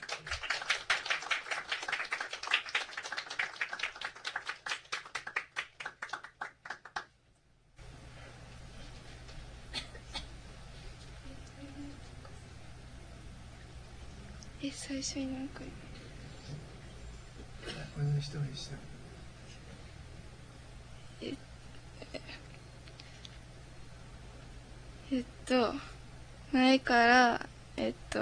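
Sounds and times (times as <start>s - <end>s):
group of people applauding: 0.0s - 7.1s
quiet room noise: 0.0s - 28.2s
speech: 14.6s - 15.9s, 18.0s - 18.9s, 25.1s - 28.2s.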